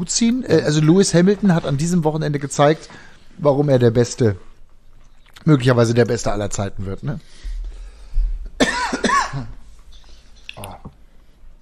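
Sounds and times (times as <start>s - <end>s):
speech: 0.0s - 4.5s, 5.4s - 7.5s
person coughing in a short coughing fit: 8.6s - 9.6s.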